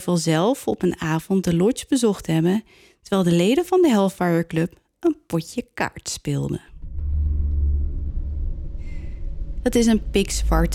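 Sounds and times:
speech: 0:00.0 - 0:06.7, 0:09.6 - 0:10.7
howling stormy wind: 0:06.7 - 0:10.7.

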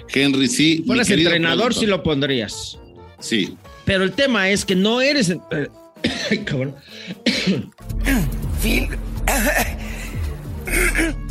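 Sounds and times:
speech: 0:00.1 - 0:09.8
person choking and coughing with raspy throat-clearing and gasping: 0:06.0 - 0:09.9, 0:10.6 - 0:11.2.

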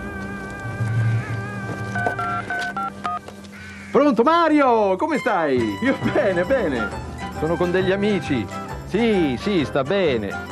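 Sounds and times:
telephone number being dialed with touch-tone beeps: 0:02.0 - 0:03.2
speech: 0:04.0 - 0:10.5.

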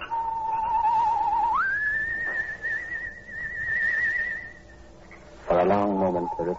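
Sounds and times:
two-tone human whistle signal at night: 0:00.0 - 0:04.9
speech: 0:05.6 - 0:06.5.

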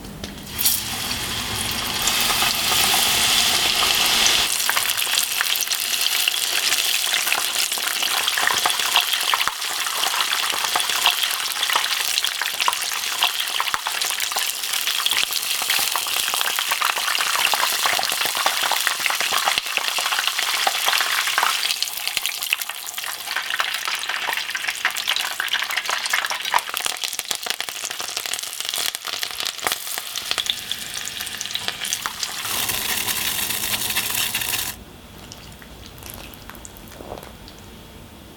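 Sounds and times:
tofu deep-frying in hot oil: 0:00.3 - 0:37.5.

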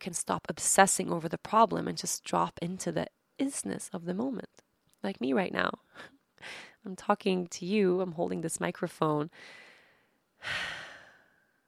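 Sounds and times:
speech: 0:00.0 - 0:09.6, 0:10.4 - 0:10.8
person breathing in and out: 0:09.4 - 0:11.6.

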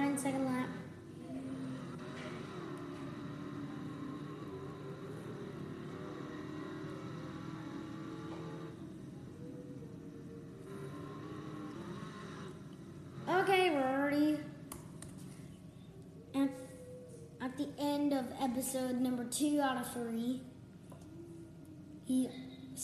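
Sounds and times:
race car engine in a stock car racing video game on a short track: 0:00.0 - 0:15.3
speech: 0:18.3 - 0:20.5, 0:22.1 - 0:22.8.

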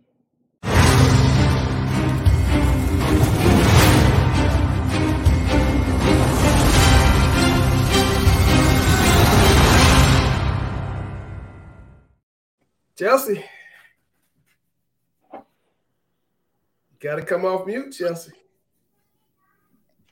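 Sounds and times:
game show intro music for a contestant: 0:00.6 - 0:12.2
speech: 0:13.0 - 0:13.6, 0:17.0 - 0:18.4.

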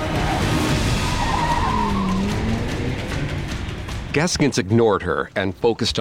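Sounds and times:
car tires squealing: 0:00.0 - 0:03.9
car engine roaring as vehicle speeds off: 0:00.0 - 0:04.4
speech: 0:04.2 - 0:05.9.

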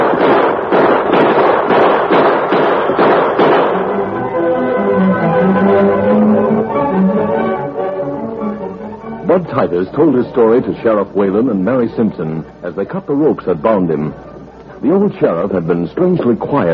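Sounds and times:
gunshots in a radio drama shootout: 0:00.0 - 0:04.0
steadier sustained tones: 0:03.7 - 0:16.4
speech: 0:09.6 - 0:16.7.

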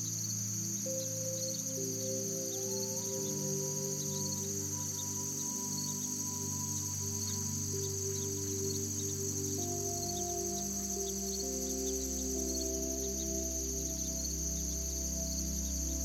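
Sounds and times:
soft sustained music of long held chords: 0:00.0 - 0:16.0.

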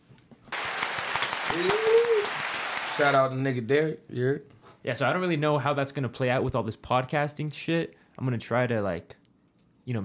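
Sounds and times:
dense hands clapping: 0:00.5 - 0:03.3
drawn-out tonal whoop or whistle: 0:01.2 - 0:02.8
speech: 0:01.6 - 0:01.8, 0:03.0 - 0:09.2, 0:09.8 - 0:10.0.

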